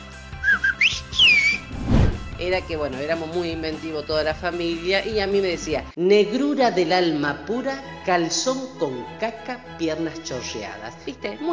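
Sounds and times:
person whistling loudly as to hail a bus: 0:00.4 - 0:01.7
breathy rush of air: 0:01.6 - 0:02.4
speech: 0:02.5 - 0:11.5.

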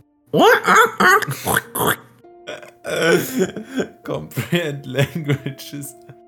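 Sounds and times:
speech: 0:00.3 - 0:01.6, 0:03.1 - 0:06.1
laughter: 0:00.4 - 0:01.5
person imitating a pig's happy squealing: 0:00.4 - 0:03.0.

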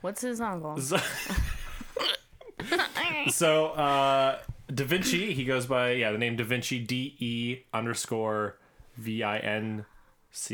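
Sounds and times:
speech: 0:00.0 - 0:10.5
laughter: 0:00.9 - 0:05.4
person hiccuping: 0:02.0 - 0:03.3.

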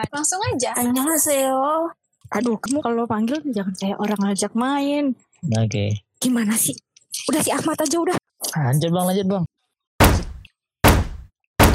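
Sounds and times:
speech: 0:00.0 - 0:09.6
heavy thuds of a door being forced open: 0:10.0 - 0:11.7.

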